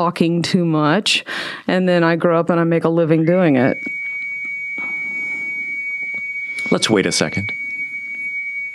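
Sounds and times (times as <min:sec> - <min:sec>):
speech: 0:00.0 - 0:04.0, 0:06.7 - 0:07.6
high-pitched alarm tone: 0:03.3 - 0:08.7.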